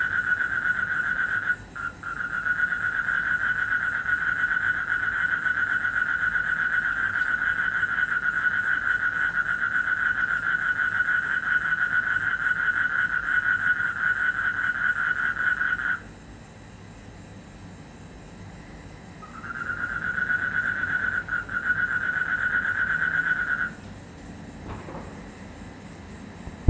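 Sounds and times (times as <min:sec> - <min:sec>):
frog trilling in Indonesia: 0:00.0 - 0:16.0, 0:19.2 - 0:23.8.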